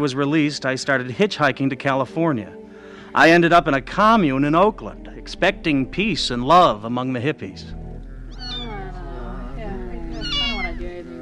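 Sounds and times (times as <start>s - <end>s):
speech: 0.0s - 7.8s
steady low hum: 3.4s - 11.2s
dying kitten meowing plaintively: 8.3s - 9.0s, 10.0s - 10.9s.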